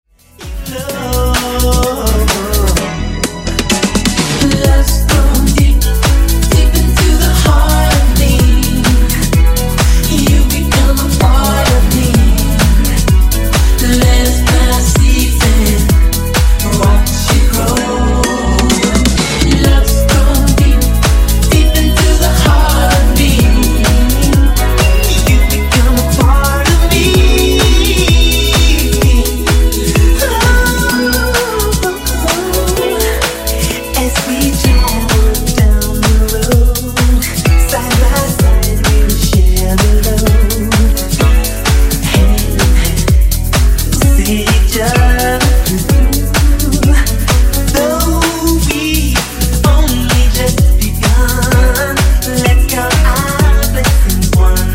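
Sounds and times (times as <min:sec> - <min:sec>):
funk bootleg music: 0:00.1 - 0:54.7.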